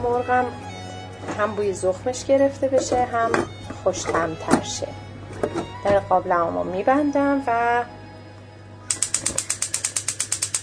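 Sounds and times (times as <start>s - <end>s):
speech: 0.0s - 5.0s, 5.8s - 8.0s
built-in gas hob spark igniter clicking: 8.9s - 10.6s.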